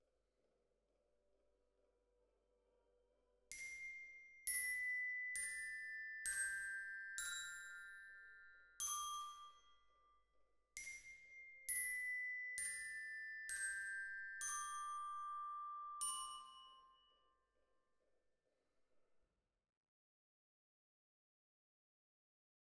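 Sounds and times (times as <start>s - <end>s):
glockenspiel: 3.5s - 17.6s.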